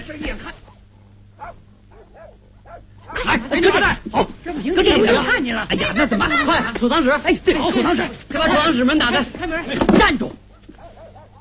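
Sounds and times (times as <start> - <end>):
low hum: 0.0 - 11.3
speech: 0.1 - 0.7, 1.4 - 10.4
dog barking: 0.5 - 3.4, 10.5 - 11.3
laughter: 4.5 - 8.7.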